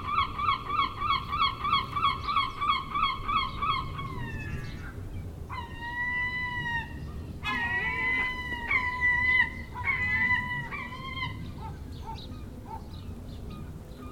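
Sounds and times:
seagulls calling: 0:00.0 - 0:14.1.

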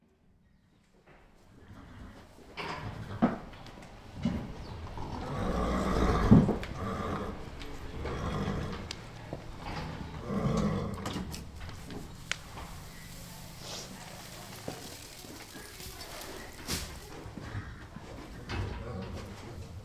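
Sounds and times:
horses snorting and whinnying at feeding time: 0:01.5 - 0:19.8
rustling: 0:07.1 - 0:19.8.

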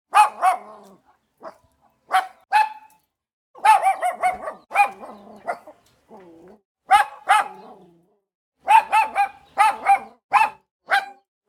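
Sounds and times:
small dog barking angrily in Cuba: 0:00.1 - 0:02.9, 0:03.6 - 0:05.8, 0:06.9 - 0:07.9, 0:08.6 - 0:11.4.

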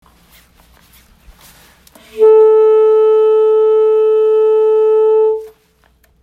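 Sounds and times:
saxophone playing F sharp: 0:02.0 - 0:05.6.

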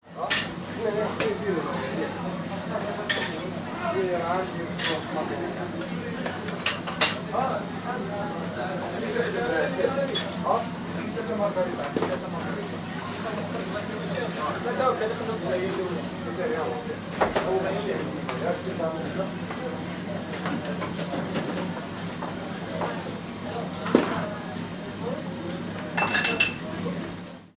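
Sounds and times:
kitchen ambience in Morocco: 0:00.1 - 0:27.4.

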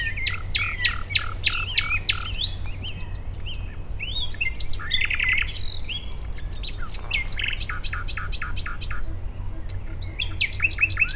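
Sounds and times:
common nightingale singing at Dishoek, Netherlands: 0:00.0 - 0:11.1.

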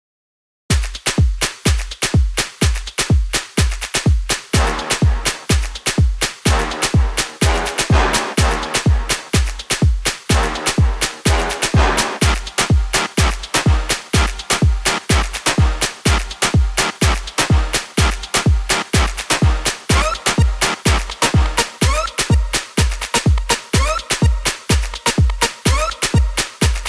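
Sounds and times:
electronic beat: 0:00.7 - 0:26.8.

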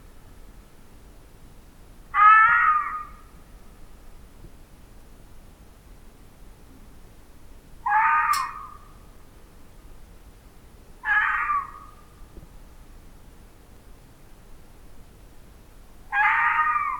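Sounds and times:
fox uttering harsh strained wailing cries: 0:02.1 - 0:03.2, 0:07.8 - 0:08.9, 0:11.0 - 0:12.0, 0:16.1 - 0:16.9.

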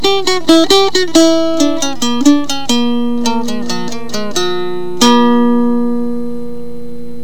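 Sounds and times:
blues music: 0:00.0 - 0:07.2.

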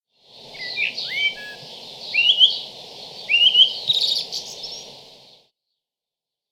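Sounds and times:
tui song in New Zealand: 0:00.4 - 0:05.5.

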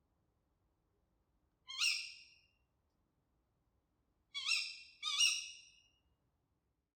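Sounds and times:
tawny owl shrill scratchy call: 0:01.7 - 0:02.3, 0:04.4 - 0:05.7.

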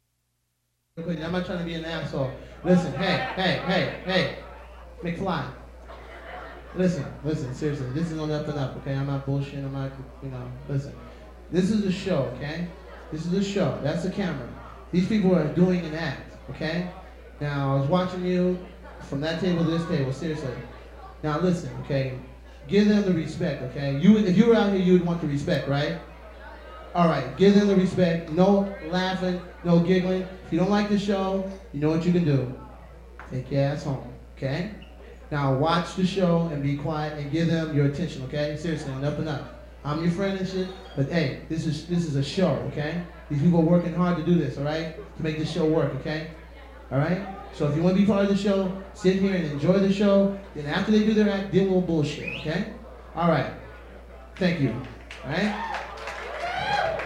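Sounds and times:
crowd warming up: 0:01.0 - 0:57.0
laughter: 0:02.4 - 0:08.9.

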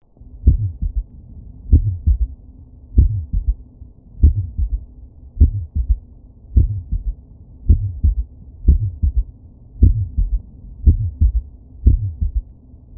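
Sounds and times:
heartbeat: 0:00.4 - 0:01.1, 0:01.7 - 0:02.4, 0:03.0 - 0:03.6, 0:04.2 - 0:06.0, 0:06.6 - 0:12.9.

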